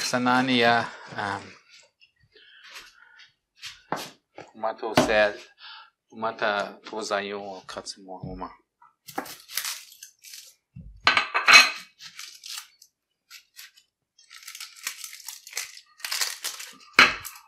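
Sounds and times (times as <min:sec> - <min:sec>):
speech: 0:00.1 - 0:01.6, 0:04.6 - 0:05.5, 0:06.1 - 0:09.4
dry crackling and rustling of an onion being peeled by hand: 0:09.0 - 0:10.8, 0:11.9 - 0:17.4.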